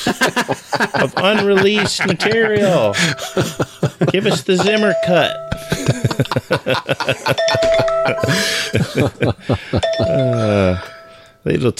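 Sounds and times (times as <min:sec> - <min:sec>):
laughter: 0:00.0 - 0:10.9
busy rhythmic sounds: 0:00.0 - 0:11.5
speech: 0:00.1 - 0:11.7
bell ringing: 0:01.2 - 0:11.5.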